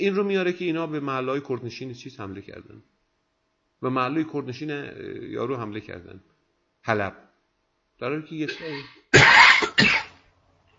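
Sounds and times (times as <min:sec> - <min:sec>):
speech: 0:00.0 - 0:03.0, 0:03.8 - 0:07.2, 0:08.0 - 0:09.9
person coughing into an open microphone in an online discussion: 0:08.5 - 0:10.2.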